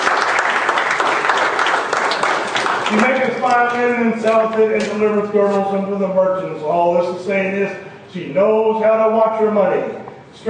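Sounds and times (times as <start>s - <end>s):
audience clapping: 0.0s - 3.8s
speech: 2.9s - 10.4s.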